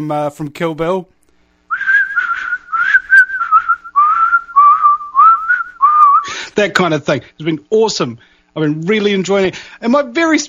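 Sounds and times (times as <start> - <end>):
speech: 0.0 - 1.2, 6.6 - 10.4
person whistling an eerie thriller-style melody: 1.7 - 6.3.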